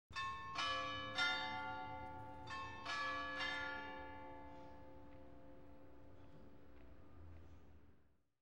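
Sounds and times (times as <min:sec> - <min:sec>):
church bell striking: 0:00.2 - 0:05.1.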